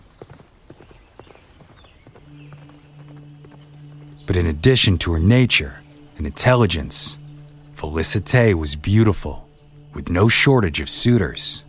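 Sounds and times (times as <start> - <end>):
horse hooves galloping: 0.0 - 5.2
low steady drone: 2.3 - 11.6
speech: 4.3 - 7.2, 7.8 - 9.4, 10.0 - 11.6.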